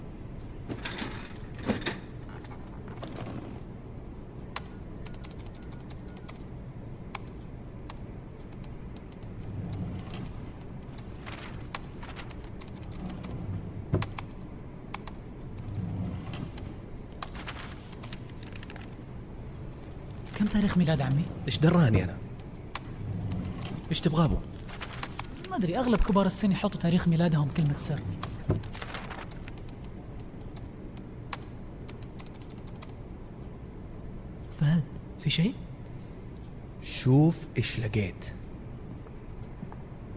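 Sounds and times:
low hum: 0:00.0 - 0:40.1
metal filing cabinet drawer sliding open in an office: 0:00.7 - 0:03.6
typing on a computer keyboard in an office: 0:04.6 - 0:06.5, 0:07.1 - 0:13.4, 0:14.0 - 0:19.0, 0:28.2 - 0:33.0
speech: 0:20.5 - 0:22.2, 0:23.9 - 0:24.5, 0:25.6 - 0:28.8, 0:35.3 - 0:35.6, 0:37.0 - 0:38.4.

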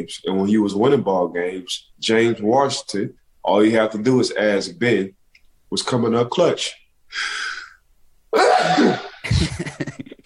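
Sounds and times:
speech: 0:00.0 - 0:07.4, 0:08.3 - 0:09.9
person sneezing: 0:08.4 - 0:09.4
laughter: 0:08.4 - 0:10.2.

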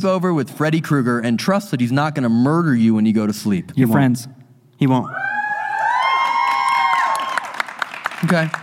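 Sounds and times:
speech: 0:00.0 - 0:05.3, 0:08.2 - 0:08.6
high-pitched screams and whoops: 0:05.1 - 0:07.6
live crowd cheering and shouting to cast a vote: 0:05.1 - 0:07.6.

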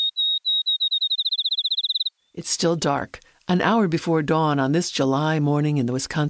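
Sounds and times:
field sparrow whistled accelerating trill song: 0:00.0 - 0:02.4
speech: 0:02.4 - 0:06.2.

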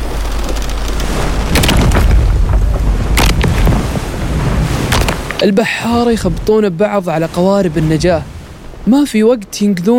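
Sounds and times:
deep low rumbling: 0:00.0 - 0:06.8
roaring storm wind at sea: 0:00.0 - 0:09.2
churning sea waves: 0:00.0 - 0:09.9
heavy booming crashes of a cargo ship splitting in half during a storm at sea: 0:01.3 - 0:06.8
speech: 0:05.4 - 0:09.9.

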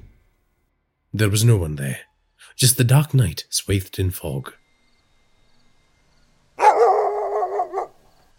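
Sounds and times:
speech: 0:01.1 - 0:04.6
drawn-out howl-like dog bark: 0:06.6 - 0:08.0.

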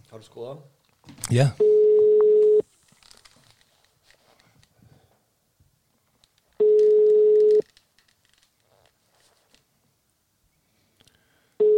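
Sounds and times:
speech: 0:00.1 - 0:01.8
telephone ringback tone on an outgoing call: 0:01.6 - 0:02.6, 0:06.6 - 0:07.6, 0:11.6 - 0:11.7
faint rustling: 0:02.6 - 0:05.3, 0:05.9 - 0:09.9.

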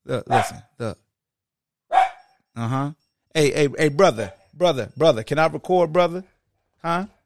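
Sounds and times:
speech: 0:00.1 - 0:01.0, 0:02.6 - 0:07.2
two chihuahuas barking: 0:00.3 - 0:00.7, 0:01.9 - 0:02.3.

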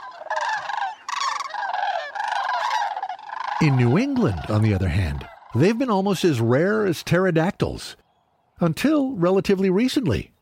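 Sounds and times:
flock of sandhill cranes calling at wintering grounds in New Mexico: 0:00.0 - 0:06.5
speech: 0:03.6 - 0:08.0, 0:08.6 - 0:10.3.

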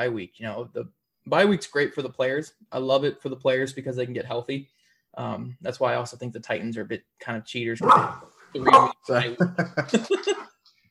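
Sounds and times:
speech: 0:00.0 - 0:10.5
dog barking: 0:07.8 - 0:09.0
laughter: 0:09.1 - 0:10.5.

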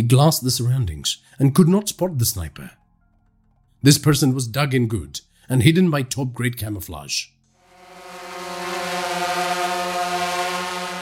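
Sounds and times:
speech: 0:00.0 - 0:02.8, 0:03.8 - 0:07.3
buzzing motor whine: 0:07.6 - 0:11.0.

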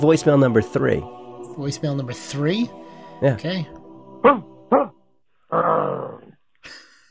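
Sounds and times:
speech: 0:00.0 - 0:06.1
dog barking: 0:04.2 - 0:05.0
dog growling: 0:04.2 - 0:06.4.

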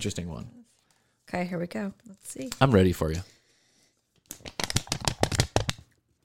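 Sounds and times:
speech: 0:00.0 - 0:00.6, 0:01.3 - 0:03.4
paper being unfolded and snapped open: 0:04.3 - 0:05.8.

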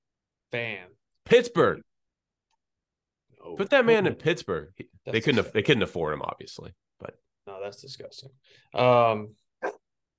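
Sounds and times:
speech: 0:00.5 - 0:01.9, 0:03.4 - 0:09.7
old dog barking throatily: 0:09.6 - 0:09.8.

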